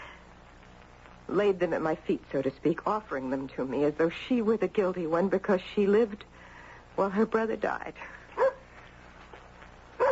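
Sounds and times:
low hum: 0.0 - 10.1
speech: 1.3 - 8.2
dog barking at the door: 8.4 - 8.7.

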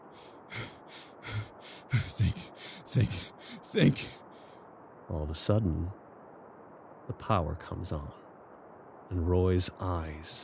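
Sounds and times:
heavy labored breathing with a low throaty edge: 0.0 - 4.7
speech: 3.0 - 3.2, 3.8 - 4.1, 5.3 - 6.0, 7.1 - 8.2, 9.1 - 10.4.

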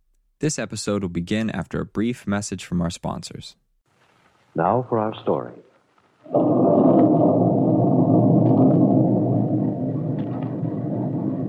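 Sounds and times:
speech: 0.4 - 3.6, 4.6 - 5.6
thunder clap and rumble as a storm begins: 6.2 - 11.4.

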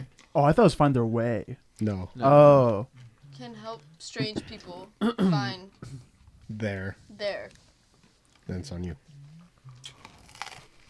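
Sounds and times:
speech: 0.4 - 7.6, 8.5 - 9.0
crunchy chewing of food: 9.3 - 10.8.

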